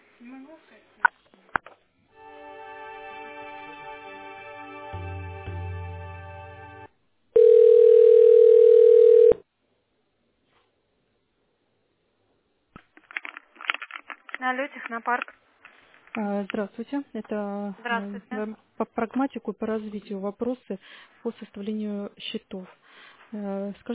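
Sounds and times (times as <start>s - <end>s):
speech: 0.2s - 1.5s, 14.5s - 15.4s, 16.2s - 23.9s
buzzy telephone line tone while a call is transferred: 7.4s - 9.4s
faint crackles: 12.8s - 16.7s.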